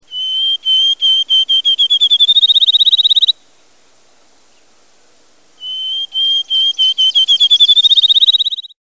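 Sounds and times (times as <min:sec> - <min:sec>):
field sparrow singing: 0:00.0 - 0:03.4, 0:05.6 - 0:08.8.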